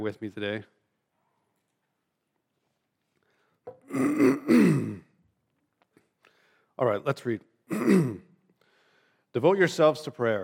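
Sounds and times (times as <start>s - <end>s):
speech: 0.0s - 0.8s, 6.8s - 8.3s, 9.3s - 10.4s
man clearing his throat: 3.8s - 5.2s, 7.7s - 8.4s.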